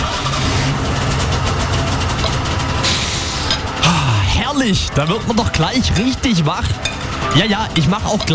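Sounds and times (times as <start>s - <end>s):
Golf car engine starting and idling in a garage: 0.0s - 8.3s
speech: 4.6s - 8.3s.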